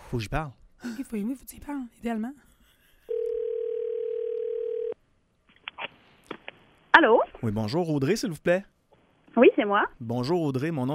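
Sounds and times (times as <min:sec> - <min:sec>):
speech: 0:00.1 - 0:02.5, 0:07.0 - 0:08.7, 0:09.3 - 0:10.9
telephone ringback tone on an outgoing call: 0:03.1 - 0:05.0.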